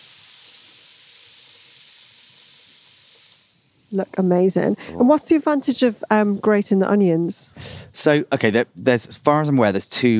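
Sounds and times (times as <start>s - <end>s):
kebab meat sizzling on a hot grill: 0.0s - 6.4s
speech: 3.9s - 10.1s.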